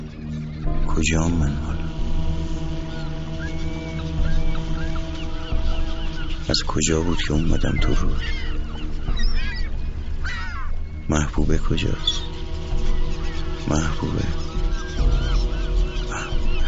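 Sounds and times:
seagulls calling over the river: 0:00.0 - 0:16.6
steady low drone: 0:00.0 - 0:16.6
speech: 0:01.0 - 0:02.0, 0:06.5 - 0:08.5, 0:11.1 - 0:12.3, 0:13.7 - 0:14.4.

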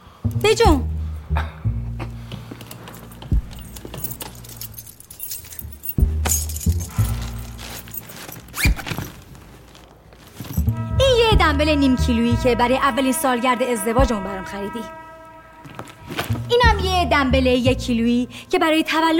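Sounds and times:
speech: 0:00.3 - 0:01.6, 0:11.6 - 0:15.0, 0:16.5 - 0:19.1
keys including a garden key jangling: 0:02.4 - 0:09.5, 0:10.3 - 0:10.8.

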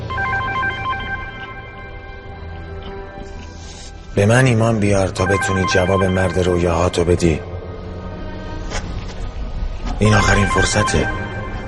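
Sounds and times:
telephone ringing: 0:00.0 - 0:02.6, 0:05.2 - 0:07.0, 0:10.0 - 0:11.6
speech: 0:04.2 - 0:07.5, 0:10.0 - 0:11.2.

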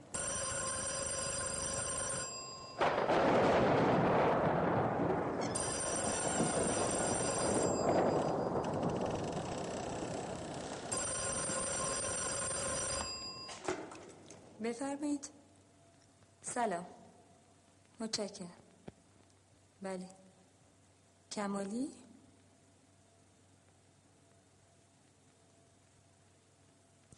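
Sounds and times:
telephone ringing for a call to a school: 0:00.0 - 0:03.0, 0:05.4 - 0:14.4
loud rumbling wash of noise: 0:02.8 - 0:12.0
speech: 0:14.7 - 0:15.4, 0:16.6 - 0:17.0, 0:18.0 - 0:18.6, 0:19.8 - 0:20.2, 0:21.3 - 0:22.0.

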